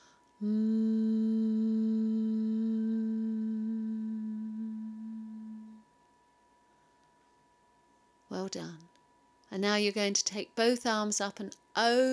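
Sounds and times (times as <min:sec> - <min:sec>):
person humming while lowering the arms during an exercise routine: 0:00.0 - 0:05.8
speech: 0:00.4 - 0:00.8, 0:08.4 - 0:08.9, 0:09.5 - 0:12.1.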